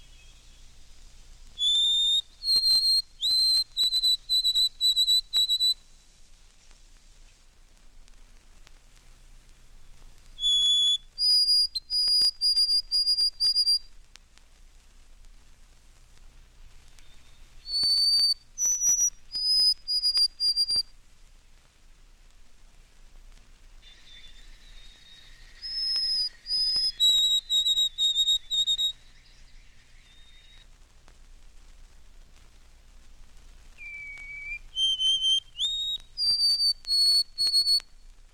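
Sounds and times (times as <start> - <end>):
white-throated sparrow singing clear whistled songs: 0.0 - 0.9, 1.6 - 5.9, 10.4 - 13.9, 17.0 - 20.9, 23.8 - 30.6, 33.8 - 38.0.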